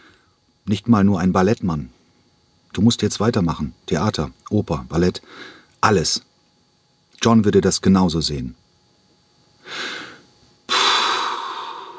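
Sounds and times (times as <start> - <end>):
speech: 0.7 - 2.0, 2.8 - 6.3, 7.2 - 8.6
man puffing heavily through his nose: 9.7 - 11.9.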